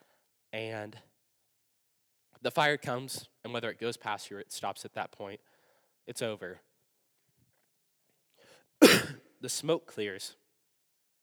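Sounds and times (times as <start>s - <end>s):
speech: 0.6s - 1.1s, 2.4s - 5.5s, 6.1s - 6.7s, 9.4s - 10.4s
single short breathy natural cough: 8.8s - 9.2s.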